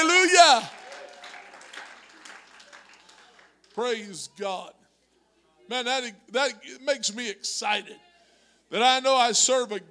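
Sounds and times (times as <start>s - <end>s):
audience clapping at a worship service: 0.0s - 4.0s
speech: 3.8s - 4.8s, 5.7s - 8.1s, 8.7s - 9.8s.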